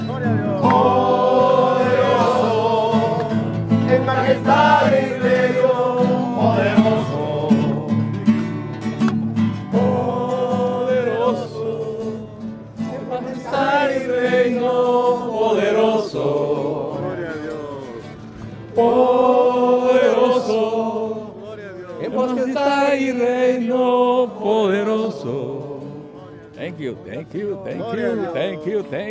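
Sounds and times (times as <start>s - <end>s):
church audience singing outdoors: 0.0s - 29.0s
church audience clapping outdoors: 0.5s - 2.2s, 3.0s - 3.5s.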